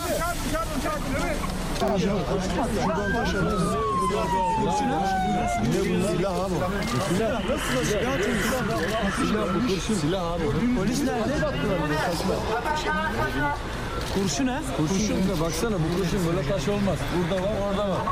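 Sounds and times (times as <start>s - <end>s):
agitated voices talking and shouting in a busy outdoor scene: 0.0s - 18.1s
police car siren sweeping downward: 1.8s - 10.4s.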